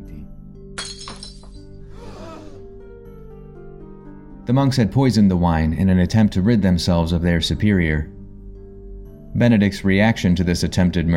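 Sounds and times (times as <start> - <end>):
cup shattering: 0.8 - 1.7
speech: 4.5 - 8.2, 9.4 - 11.1.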